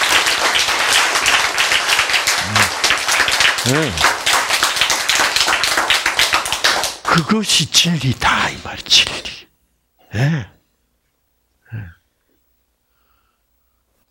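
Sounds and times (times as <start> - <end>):
crowd applauding: 0.0 - 7.4
speech: 3.7 - 4.1, 7.2 - 9.3.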